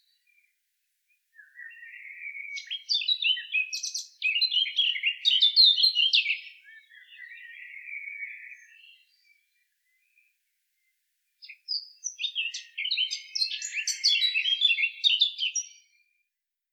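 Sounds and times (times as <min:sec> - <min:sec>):
Eurasian blackcap Sylvia atricapilla singing: 0:01.4 - 0:10.3, 0:11.4 - 0:15.9.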